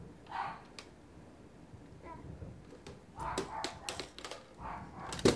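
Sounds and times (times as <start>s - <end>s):
puppies barking: 0.3s - 0.6s, 3.2s - 4.0s, 4.6s - 5.2s.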